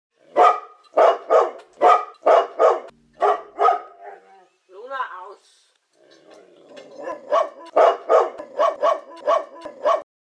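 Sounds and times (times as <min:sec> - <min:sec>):
dog voice: 0:00.3 - 0:04.5, 0:06.8 - 0:10.1.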